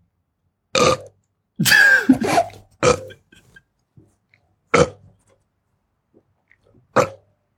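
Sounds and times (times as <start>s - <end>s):
person burping: 1.6s - 3.6s.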